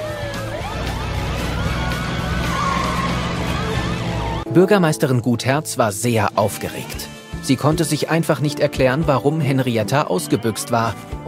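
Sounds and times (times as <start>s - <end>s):
red quad bike engine drone while driving off: 0.0s - 4.4s
whining wavering tones: 0.3s - 4.4s
speech: 4.5s - 11.2s.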